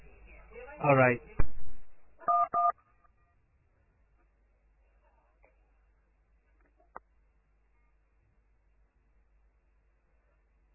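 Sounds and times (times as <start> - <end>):
speech: 0.8 - 1.4
telephone keypad tones as the star key is pressed and a number dialed: 2.3 - 2.7.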